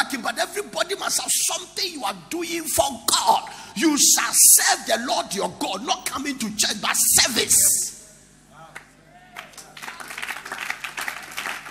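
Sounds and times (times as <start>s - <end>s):
speech: 0.1s - 7.8s
church congregation clapping: 8.8s - 11.7s.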